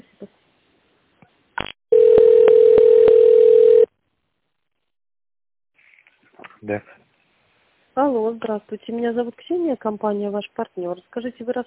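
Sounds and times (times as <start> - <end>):
telephone tone while a call to a business line is being connected: 1.9 - 3.9
speech: 6.7 - 7.0, 8.0 - 11.6.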